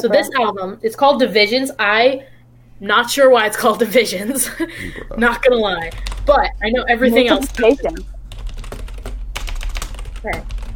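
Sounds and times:
speech: 0.0s - 8.1s, 10.2s - 10.5s
steady hum: 0.0s - 10.7s
low voice murmur: 4.8s - 5.2s
typing on a computer keyboard: 5.9s - 6.3s, 8.3s - 10.7s.

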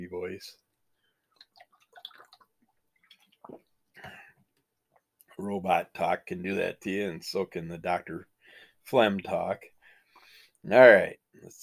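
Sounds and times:
speech: 0.3s - 0.6s, 5.4s - 9.7s, 10.6s - 11.6s
person taking a swig of water: 1.0s - 4.4s.

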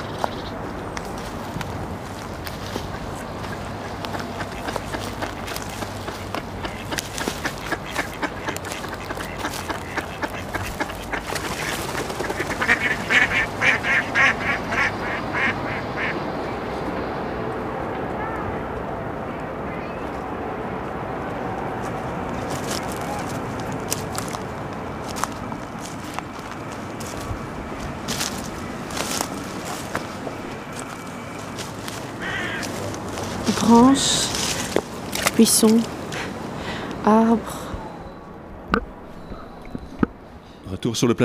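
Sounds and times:
outdoor hum of water and breeze: 0.0s - 41.2s
ducks quacking at a small pond: 2.8s - 16.3s, 28.1s - 34.8s
speech: 33.7s - 34.2s, 35.4s - 36.0s, 37.0s - 37.5s, 40.9s - 41.2s.

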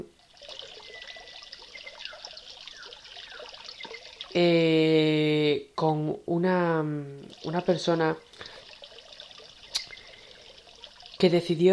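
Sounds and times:
steady trickle of running water outdoors: 0.0s - 5.5s, 6.8s - 11.7s
faint chirps: 0.6s - 4.4s, 9.4s - 11.0s
speech: 4.4s - 8.5s, 11.2s - 11.7s.

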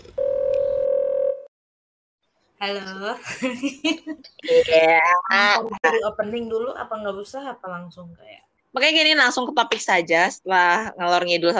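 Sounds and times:
telephone dial tone: 0.2s - 1.5s
speech: 2.6s - 11.5s.

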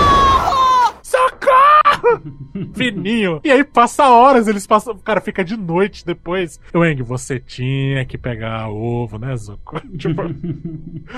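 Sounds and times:
voice imitating a thin high-pitched scream for help: 0.0s - 2.0s
laughter: 1.8s - 3.2s, 9.8s - 11.1s
speech: 2.2s - 11.1s.

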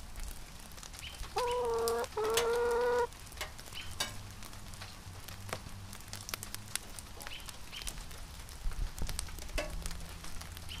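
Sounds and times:
steady rain with dense patter and sharp drips on surfaces: 0.0s - 10.7s
chickens calling in the rain: 1.0s - 4.0s.

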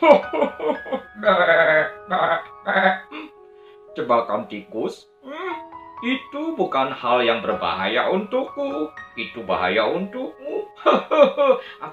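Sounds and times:
speech: 0.0s - 1.6s, 4.1s - 5.1s, 6.0s - 11.9s
person imitating a goat laughing with bleats: 1.2s - 3.1s.

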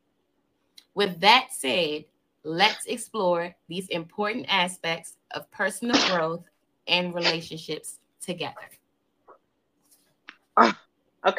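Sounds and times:
speech: 1.0s - 8.8s, 10.6s - 11.3s
sneeze: 5.9s - 6.2s.

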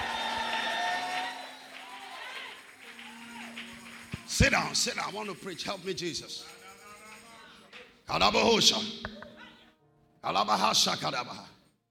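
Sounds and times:
audience clapping: 0.0s - 6.1s
speech: 4.4s - 6.6s, 8.1s - 9.1s, 10.2s - 11.5s.

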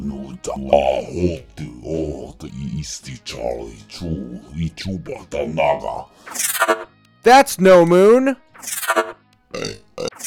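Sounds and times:
speech: 0.0s - 9.9s
loud throaty burp and guttural belches: 9.5s - 10.2s.

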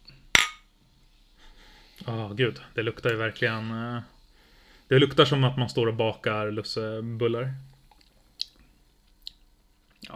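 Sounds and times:
glasses clinking in a toast: 0.4s - 0.6s
speech: 2.1s - 4.2s, 4.9s - 7.7s.

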